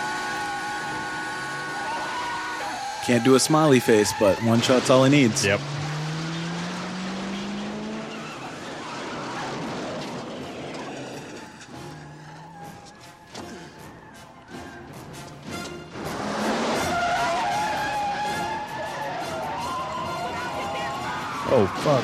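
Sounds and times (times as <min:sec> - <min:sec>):
car tires squealing in a skid: 0:00.0 - 0:22.0
speech: 0:03.1 - 0:05.8
car flipping over with heavy rumble and clatter: 0:04.0 - 0:14.0, 0:15.8 - 0:20.0.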